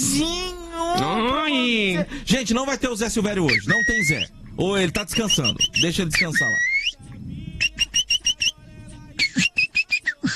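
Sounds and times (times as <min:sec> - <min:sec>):
speech: 0:00.1 - 0:06.7
rufous-bellied thrush whistling repeated notes: 0:03.5 - 0:04.3, 0:05.2 - 0:07.0, 0:07.6 - 0:08.6, 0:09.2 - 0:10.2.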